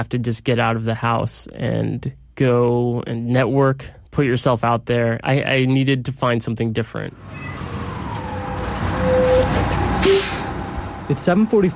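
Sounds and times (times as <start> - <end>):
speech: 0.0 - 7.7, 11.1 - 11.7
faint whining tone: 7.3 - 11.0
commuter bus engine idling: 7.4 - 11.7
commuter bus air brakes hissing: 8.4 - 10.8.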